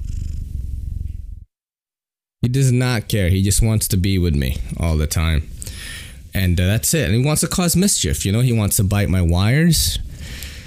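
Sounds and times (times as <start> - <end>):
male ragdoll cat purring loudly: 0.0 - 1.2
speech: 2.4 - 5.6, 6.3 - 10.4.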